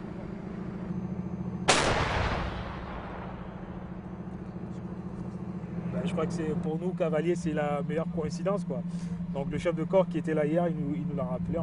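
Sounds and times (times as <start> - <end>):
low engine-like hum: 0.0 - 11.6
heavy gun blast during live firing by an armoured cavalry platoon: 1.7 - 4.2
speech: 6.0 - 11.6.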